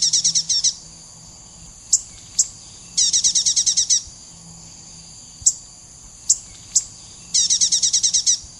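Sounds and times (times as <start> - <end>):
dark-necked tailorbird of subspecies atrogularis singing buzzy trills: 0.0 - 0.8, 1.9 - 4.1, 6.2 - 8.5.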